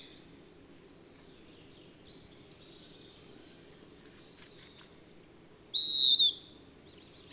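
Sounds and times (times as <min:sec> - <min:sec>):
bird calls with sweeping notes and a loud whistled note: 0:05.7 - 0:06.4.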